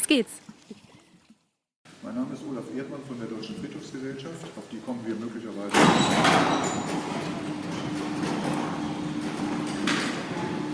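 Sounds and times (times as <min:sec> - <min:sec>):
speech: 0:00.1 - 0:00.5, 0:02.0 - 0:08.6
large gate closing at a cemetery entrance hall: 0:05.7 - 0:10.6.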